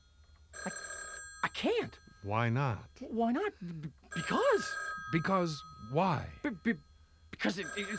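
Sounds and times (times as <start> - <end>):
telephone bell ringing: 0.0 - 3.4, 4.1 - 7.9
speech: 1.6 - 7.9.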